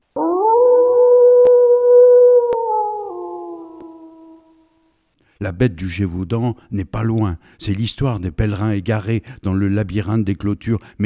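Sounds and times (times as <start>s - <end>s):
wolf howling: 0.2s - 4.5s
speech: 5.4s - 11.0s.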